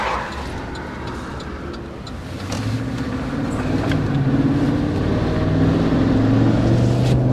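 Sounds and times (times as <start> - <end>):
truck loaded with camera gear driving on the road: 0.0 - 7.3.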